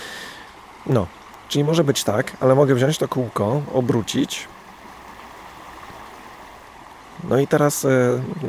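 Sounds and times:
flowing stream water: 0:00.0 - 0:08.4
speech: 0:00.8 - 0:04.6, 0:07.2 - 0:08.4.

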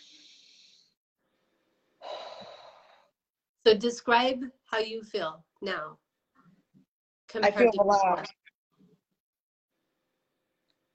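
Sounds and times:
slow deep relaxation breathing: 0:00.0 - 0:03.2
speech: 0:03.6 - 0:06.0, 0:07.3 - 0:08.4.

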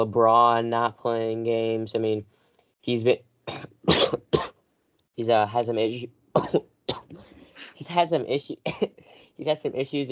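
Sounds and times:
speech: 0:00.0 - 0:04.5, 0:05.2 - 0:07.0, 0:07.8 - 0:10.1
coughing: 0:03.5 - 0:04.5, 0:05.3 - 0:09.6
throat clearing: 0:03.5 - 0:04.5, 0:06.4 - 0:09.3.

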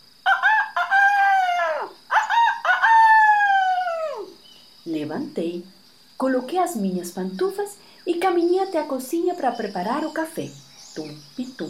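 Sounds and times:
faint steady whine: 0:00.0 - 0:11.6
rooster crowing: 0:00.2 - 0:04.4
speech: 0:05.1 - 0:11.6.

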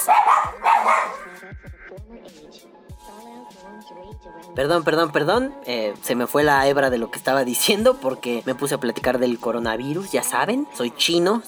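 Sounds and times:
dogs barking excitedly: 0:00.0 - 0:01.4
speech: 0:01.4 - 0:11.4.

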